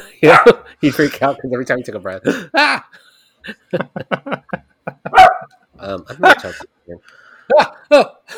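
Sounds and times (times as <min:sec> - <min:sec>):
laughter: 0:00.0 - 0:01.6, 0:02.2 - 0:05.4, 0:07.5 - 0:08.3
speech: 0:00.2 - 0:08.3
dog barking in sharp yaps: 0:00.3 - 0:00.6, 0:05.1 - 0:05.6.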